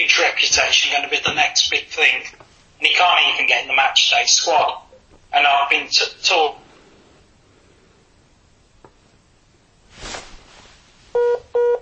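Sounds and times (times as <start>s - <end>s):
speech: 0.0s - 6.6s
rush of soft noise: 6.6s - 11.2s.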